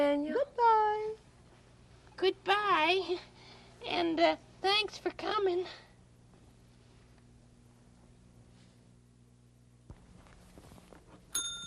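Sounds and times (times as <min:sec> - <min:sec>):
speech: 0:00.0 - 0:00.6, 0:02.2 - 0:05.8
shuffling sounds: 0:06.3 - 0:09.0, 0:09.9 - 0:11.3
single bright bell ringing to announce a visitor: 0:11.3 - 0:11.6.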